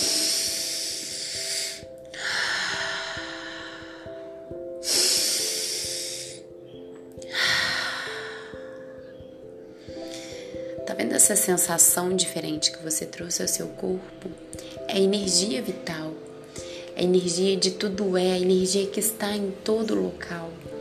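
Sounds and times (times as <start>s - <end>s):
deep breaths in through the nose and out through the mouth: 0.0s - 6.6s, 7.3s - 9.0s
soft sustained music: 0.0s - 20.7s
speech: 11.2s - 15.9s, 17.0s - 20.7s.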